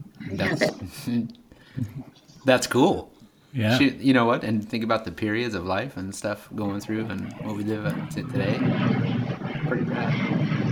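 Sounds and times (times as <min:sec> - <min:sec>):
speech: 0:00.4 - 0:10.4
airplane engine drone: 0:07.3 - 0:10.6.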